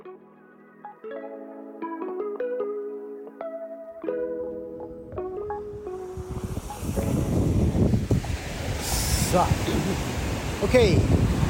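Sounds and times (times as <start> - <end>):
melodic music: 0.0 - 8.6
ocean waves breaking on a beach on a hot evening: 4.7 - 11.4
speech: 9.3 - 11.4.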